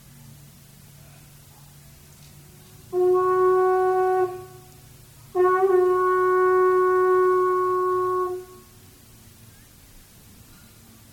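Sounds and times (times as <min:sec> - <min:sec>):
conch shell blown as a horn: 0:02.8 - 0:08.9.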